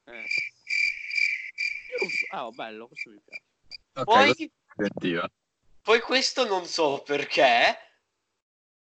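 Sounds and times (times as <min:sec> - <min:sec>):
crickets chirping: 0:00.0 - 0:04.4
speech: 0:02.3 - 0:03.4, 0:04.0 - 0:07.8.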